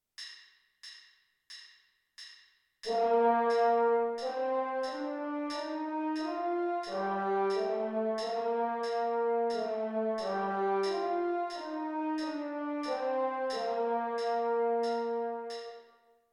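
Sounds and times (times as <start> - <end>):
French horn playing an F major scale: 2.9 - 15.9.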